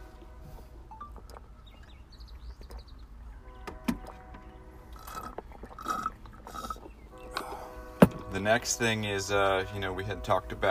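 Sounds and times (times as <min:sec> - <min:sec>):
person drinking water with gulps and swallowing: 0:04.9 - 0:07.6
speech: 0:08.4 - 0:10.6.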